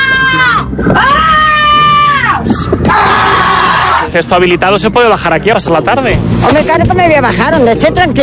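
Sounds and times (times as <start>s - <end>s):
loud piercing high-pitched screams wavering in pitch: 0.0s - 4.1s
speech: 4.1s - 8.2s.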